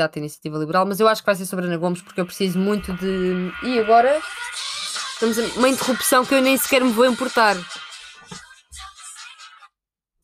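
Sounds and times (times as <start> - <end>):
speech: 0.0 - 8.4
mobile phone ringtone playing a pop song: 2.0 - 9.7.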